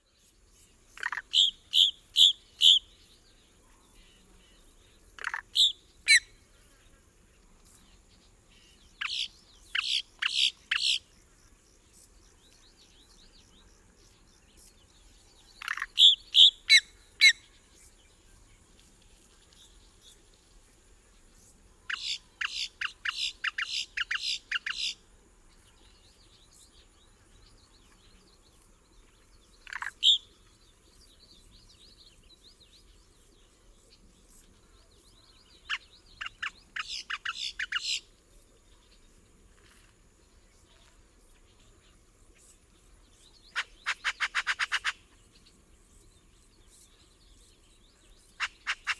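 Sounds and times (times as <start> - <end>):
adult boat-tailed grackle calling: 1.0 - 2.8, 5.2 - 6.3, 9.0 - 11.0, 15.6 - 17.4, 21.9 - 25.0, 29.6 - 30.2, 35.7 - 38.0, 43.5 - 45.1, 48.4 - 48.9.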